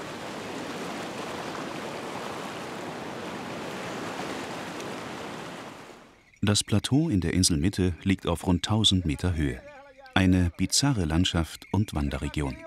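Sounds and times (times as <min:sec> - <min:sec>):
sea waves surging into natural rock pools on an island coast: 0:00.0 - 0:06.1
speech: 0:06.4 - 0:12.6.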